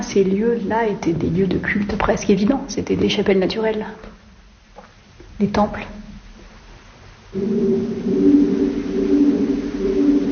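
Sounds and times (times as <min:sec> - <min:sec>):
speech: 0:00.2 - 0:04.2, 0:05.4 - 0:06.0, 0:07.3 - 0:09.2
pigeons cooing in a cave: 0:07.4 - 0:10.3.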